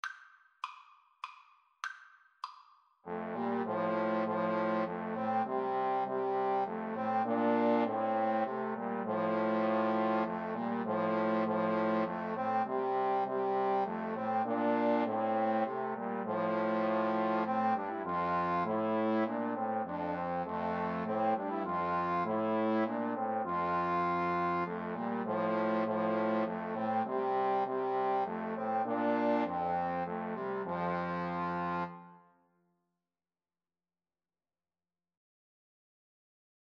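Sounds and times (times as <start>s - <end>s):
trombone karaoke hymn: 3.1s - 32.0s.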